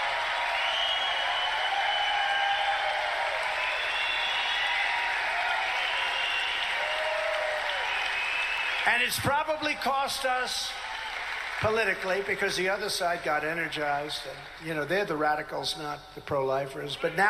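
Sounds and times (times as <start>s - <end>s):
large crowd whooping and shouting: 0.0s - 9.3s, 10.3s - 11.7s
large crowd clapping: 0.0s - 15.6s
speech: 8.9s - 10.8s, 11.6s - 17.2s.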